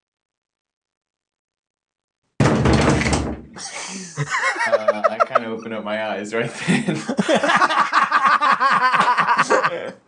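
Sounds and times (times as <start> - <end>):
loud knocking on a door: 2.4 - 3.4
laughter: 3.6 - 10.0
speech: 4.2 - 8.0, 8.7 - 10.0.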